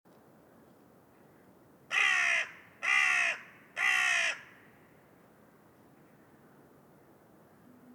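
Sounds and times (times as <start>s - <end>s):
Corvus corone carrion crow cawing: 1.9s - 4.7s.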